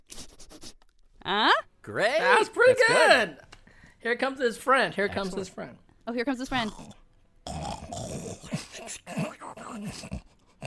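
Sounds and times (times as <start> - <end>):
speech: 1.3 - 3.4, 4.0 - 7.0, 9.0 - 10.2
person imitating snoring and snuffing with the soft palate: 6.5 - 10.6.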